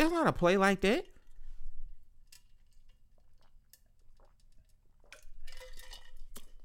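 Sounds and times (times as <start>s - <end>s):
speech: 0.0s - 1.1s
person drinking Gatorade from a plastic sports-drink bottle: 2.6s - 6.6s.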